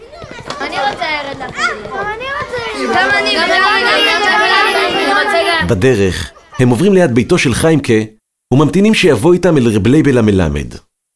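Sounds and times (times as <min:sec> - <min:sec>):
children shouting cheerfully with singsong cries: 0:00.0 - 0:05.7
procession of children chattering in a small town: 0:00.0 - 0:06.6
speech: 0:00.8 - 0:10.9
children singing songs of joy and faith together: 0:02.1 - 0:05.7.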